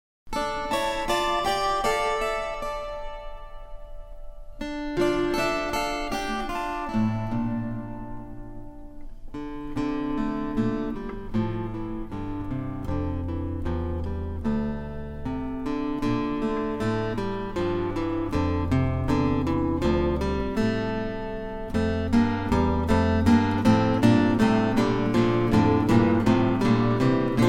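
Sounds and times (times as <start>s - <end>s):
guitar trio playing a Christmas carol: 0.4s - 27.4s.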